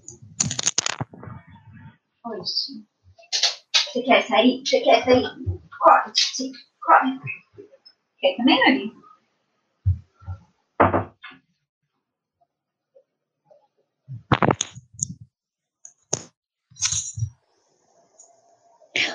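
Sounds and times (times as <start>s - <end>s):
speech: 2.3s - 7.4s, 8.2s - 9.0s
dull thumps of a door being opened: 10.8s - 11.2s.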